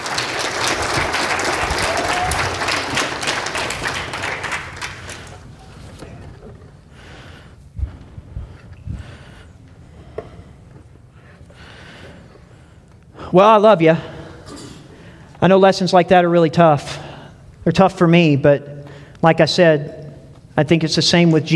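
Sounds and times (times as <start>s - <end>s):
audience applauding volunteers: 0.0s - 5.8s
speech: 13.3s - 14.1s, 15.4s - 16.9s, 17.6s - 20.0s, 20.6s - 21.5s.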